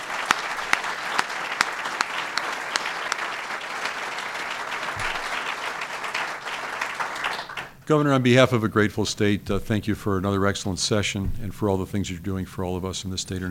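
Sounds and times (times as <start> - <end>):
applause from a sizable audience: 0.0 - 7.8
speech: 7.9 - 13.4.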